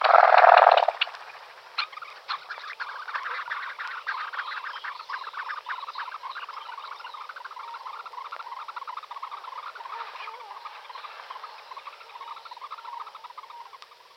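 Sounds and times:
red-necked phalarope calling: 0:00.0 - 0:14.1.

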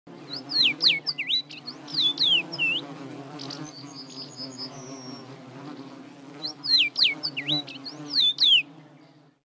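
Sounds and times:
common rosefinch calling: 0:00.3 - 0:05.2, 0:06.4 - 0:08.6.

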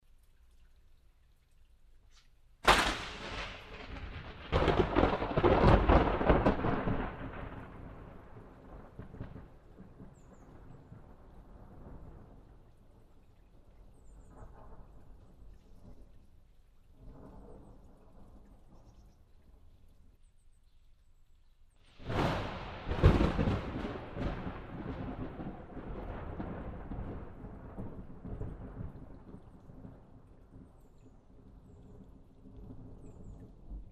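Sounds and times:
thunderstorm: 0:02.6 - 0:12.6, 0:22.0 - 0:30.8.

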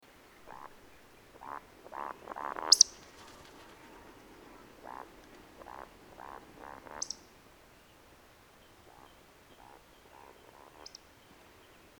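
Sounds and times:
woodcock voice: 0:00.4 - 0:07.4, 0:08.6 - 0:11.1.

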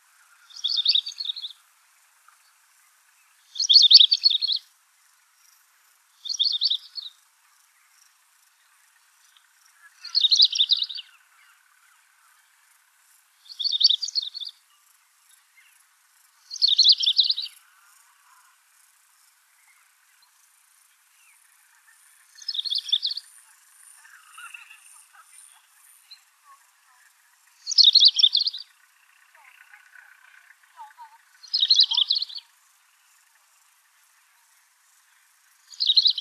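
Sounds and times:
long-tailed rosefinch calling: 0:00.5 - 0:01.6, 0:03.5 - 0:04.7, 0:06.2 - 0:07.2, 0:09.8 - 0:11.7, 0:13.5 - 0:14.6, 0:16.4 - 0:17.6, 0:22.3 - 0:32.6, 0:35.7 - 0:36.1.

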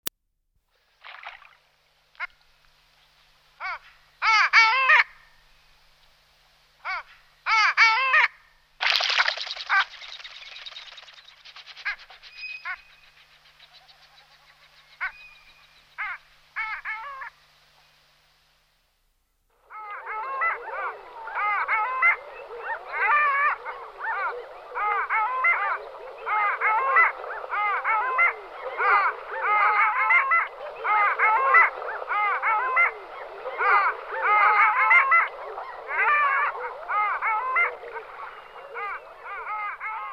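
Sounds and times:
long-tailed duck calling: 0:03.6 - 0:05.2, 0:06.8 - 0:13.0, 0:19.6 - 0:40.1.

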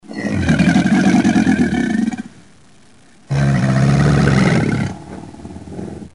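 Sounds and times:
crocodile vocalizing: 0:00.0 - 0:02.3, 0:03.3 - 0:05.6.

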